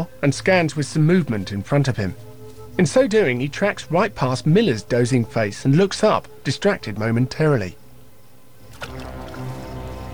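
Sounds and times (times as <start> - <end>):
speech: 0.0 - 7.8
low continuous watery wash: 8.6 - 10.1.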